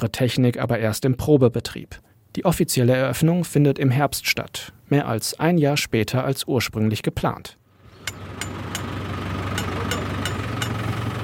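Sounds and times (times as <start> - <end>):
speech: 0.0 - 8.5
tractor engine idling with a deep rumble: 7.8 - 11.2
sharp clicks and light metallic knocks of a water canister being fastened to a tractor: 8.1 - 8.9, 9.6 - 10.8.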